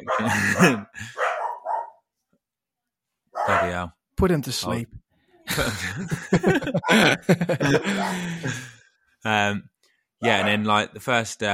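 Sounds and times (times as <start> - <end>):
laughter: 0.0 - 1.2, 5.5 - 8.8
speech: 0.0 - 1.2, 3.6 - 11.5
dogs barking: 0.0 - 2.0, 3.4 - 3.8, 6.5 - 8.4, 10.2 - 10.7.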